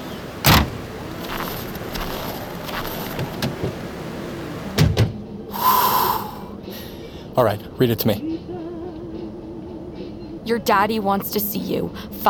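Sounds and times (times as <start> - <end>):
quiet shuffling of people getting into a car: 0.2 - 3.8
car door shutting with a heavy thud: 0.4 - 1.4, 3.0 - 3.8, 4.7 - 5.2
speech: 7.4 - 8.3, 10.5 - 12.2.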